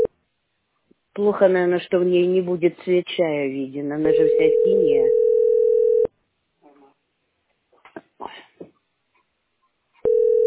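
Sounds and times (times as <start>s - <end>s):
speech: 1.2s - 5.2s
telephone line tone of an unanswered call: 4.1s - 6.1s, 10.0s - 10.4s.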